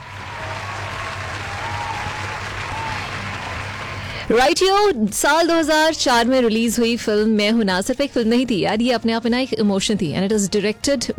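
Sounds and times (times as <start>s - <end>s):
loud sustained crowd applause: 0.0s - 4.4s
speech: 4.3s - 11.1s.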